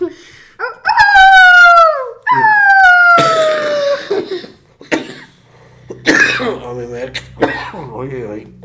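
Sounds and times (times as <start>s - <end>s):
person imitating wolf howls: 0.6s - 3.9s
raspy coughs from a lingering cough: 3.2s - 8.0s
speech: 8.0s - 8.6s.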